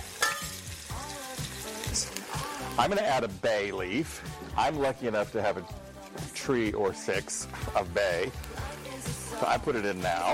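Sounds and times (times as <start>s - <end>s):
onions frying in olive oil in a soup pot: 0.0s - 3.4s, 5.5s - 10.3s
speech: 2.8s - 5.8s, 6.4s - 8.5s, 9.4s - 10.3s.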